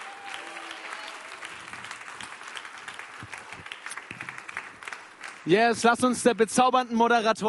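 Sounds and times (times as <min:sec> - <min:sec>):
audience applause: 0:00.0 - 0:05.6
speech: 0:05.5 - 0:07.4.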